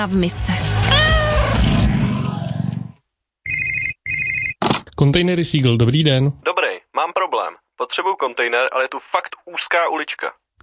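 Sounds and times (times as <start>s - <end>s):
speech: 0.0s - 0.7s, 5.0s - 10.4s
cat meowing: 0.8s - 1.7s
electronic telephone ring: 3.4s - 4.6s.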